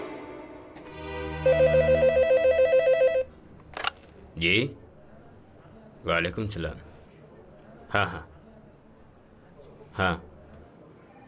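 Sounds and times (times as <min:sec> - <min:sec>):
telephone bell ringing: 0:01.4 - 0:03.3
speech: 0:04.4 - 0:04.8, 0:06.0 - 0:06.8, 0:07.9 - 0:08.3, 0:10.0 - 0:10.2.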